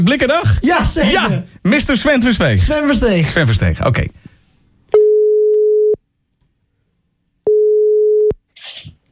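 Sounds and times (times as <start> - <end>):
speech: 0.0 - 4.2
telephone ringing tone while a call is placed: 5.0 - 6.0, 7.5 - 8.4.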